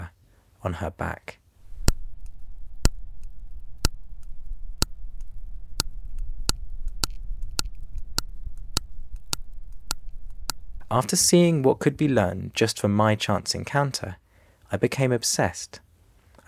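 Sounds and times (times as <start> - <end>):
speech: 0.6 - 1.4, 10.9 - 15.8
hunting female sperm whale clicking off Dominica: 1.6 - 11.1
low steady underwater rumble: 1.6 - 11.1.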